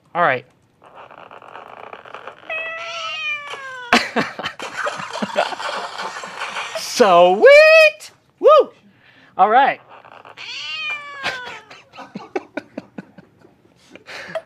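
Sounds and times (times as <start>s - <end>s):
speech: 0.2s - 0.6s, 5.4s - 6.1s, 6.8s - 8.7s, 9.4s - 9.9s
drawn-out cartoonish video game cat meow: 2.0s - 4.0s, 10.1s - 11.9s
laughter: 3.9s - 7.0s, 11.2s - 14.4s.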